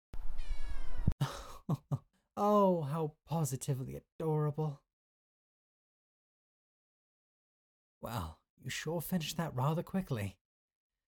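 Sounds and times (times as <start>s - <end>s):
cat chirping meows: 0.2s - 1.1s
speech: 1.7s - 4.8s, 8.0s - 10.4s.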